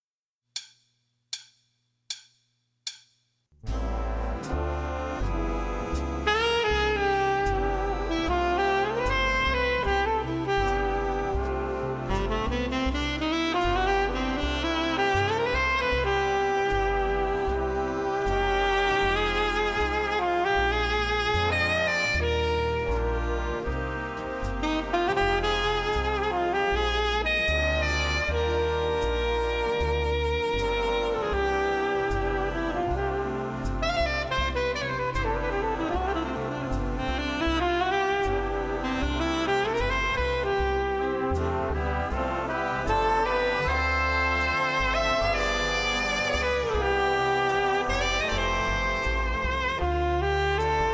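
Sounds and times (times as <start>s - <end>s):
alto sax solo: 3.7s - 50.9s.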